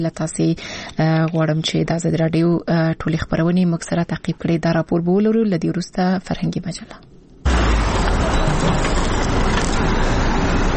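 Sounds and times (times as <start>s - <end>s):
speech: 0.0s - 7.2s
heavy vehicles loaded with medical supplies and medicines driving: 7.4s - 10.7s.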